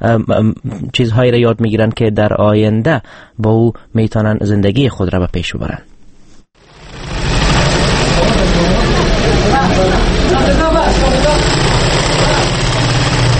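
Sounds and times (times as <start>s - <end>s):
speech: 0.0s - 5.9s, 9.7s - 11.6s
sewing machine running in an orphanage workshop in Kabul: 6.6s - 13.3s.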